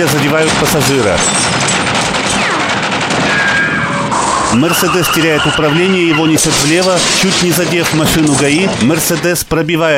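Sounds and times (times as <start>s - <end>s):
speech: 0.0s - 1.6s, 4.5s - 9.9s
automatic rifle fired from a traffic police car window on a bridge: 0.4s - 4.4s.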